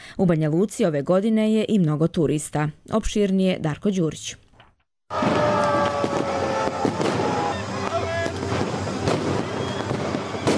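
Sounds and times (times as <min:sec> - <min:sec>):
speech: 0:00.2 - 0:04.4, 0:05.1 - 0:05.5
crowd noise in a crowded town square: 0:05.1 - 0:10.5
firecrackers popping at New Year's Eve celebration in a town square: 0:05.1 - 0:10.5
music: 0:05.8 - 0:10.5.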